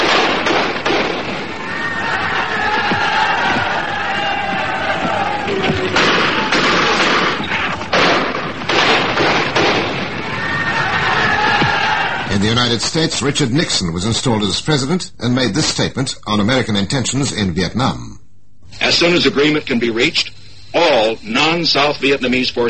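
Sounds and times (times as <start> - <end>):
gunfire: 0.0 - 2.2, 5.6 - 10.5
large agitated crowd roaring and shouting: 1.4 - 7.9, 10.0 - 12.4
speech: 12.6 - 22.6.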